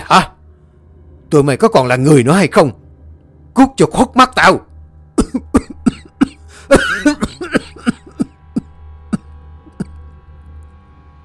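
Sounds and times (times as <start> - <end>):
speech: 0.1 - 0.3, 1.3 - 2.8, 3.6 - 4.7, 5.3 - 5.6, 6.7 - 7.2
angry father coughing in a fit: 5.2 - 10.0.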